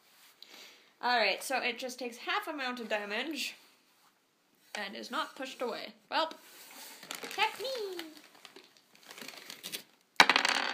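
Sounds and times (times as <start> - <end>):
speech: 1.0 - 3.6, 4.8 - 6.6
dice rolling on a table during a tabletop role-playing game: 10.2 - 10.7.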